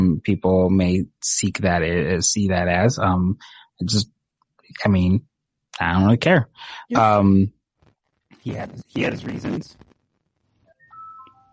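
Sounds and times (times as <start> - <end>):
speech: 0.1 - 7.6, 8.4 - 9.9
phone electronic ringtone with incoming call: 10.7 - 11.5.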